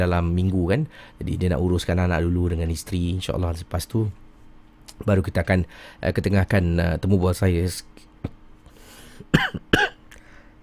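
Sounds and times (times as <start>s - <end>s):
speech: 0.0s - 4.2s, 5.0s - 8.1s
person coughing: 9.3s - 10.0s.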